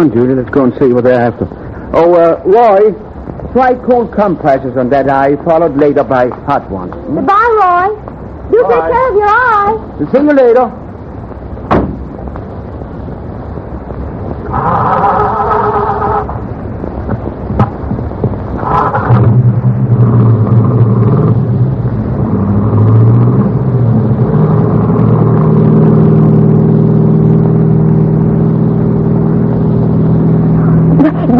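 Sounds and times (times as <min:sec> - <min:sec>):
speech: 0:00.0 - 0:10.8, 0:14.5 - 0:15.0
police car engine revving and driving: 0:00.0 - 0:31.3
sharp clunks and knocks: 0:11.7 - 0:12.5, 0:17.0 - 0:18.4.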